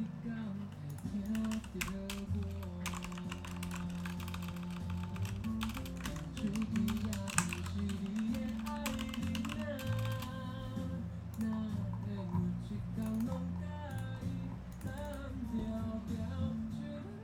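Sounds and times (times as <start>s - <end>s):
music: 0.0s - 17.2s
typing on a computer keyboard: 0.9s - 10.4s.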